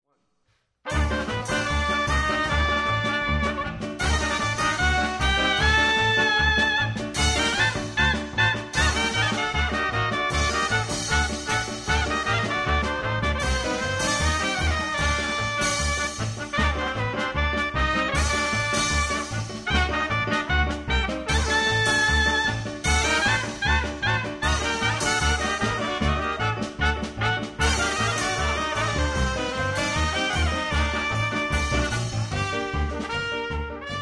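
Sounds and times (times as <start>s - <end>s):
klezmer medley: 0.8s - 33.9s.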